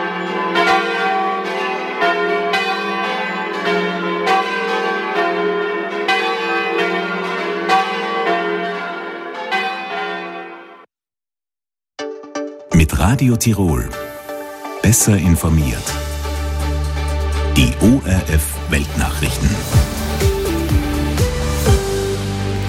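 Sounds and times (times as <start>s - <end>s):
several church bells pealing together: 0.0s - 10.9s, 14.8s - 22.6s
speech: 13.1s - 14.1s, 14.9s - 16.1s, 17.6s - 19.8s.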